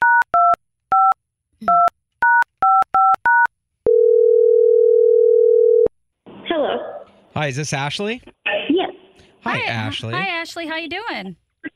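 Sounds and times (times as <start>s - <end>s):
steady continuous tone on the phone line: 0.0s - 5.9s
speech: 7.4s - 8.4s, 9.4s - 11.4s.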